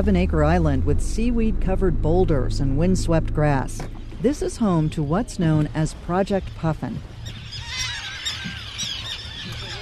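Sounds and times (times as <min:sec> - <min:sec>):
speech: 0:00.0 - 0:07.1
low windy rumble: 0:00.0 - 0:09.8
gulls and terns screeching in a seabird colony: 0:07.2 - 0:09.8.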